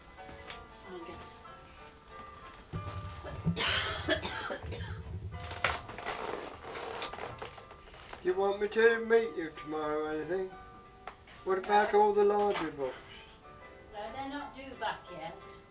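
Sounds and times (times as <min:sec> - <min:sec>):
steady low hum: 0:02.7 - 0:06.8
short dry coughs: 0:03.5 - 0:05.0
speech: 0:08.3 - 0:10.6, 0:11.4 - 0:13.0.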